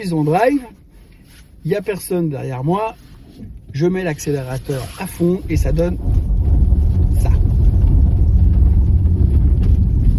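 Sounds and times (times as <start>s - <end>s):
speech: 0.0s - 6.2s
car heater ventilation fan hum inside car: 5.0s - 10.1s.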